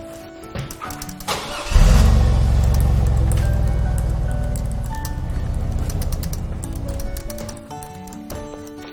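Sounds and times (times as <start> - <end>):
car engine turning over and starting: 1.3 - 7.5.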